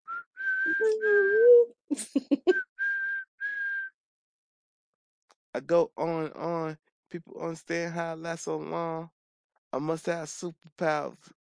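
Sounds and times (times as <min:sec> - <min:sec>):
whistle blowing shrill blasts: 0:00.1 - 0:01.6, 0:02.6 - 0:03.9
low voiced tone: 0:00.7 - 0:01.7
speech: 0:05.6 - 0:11.4.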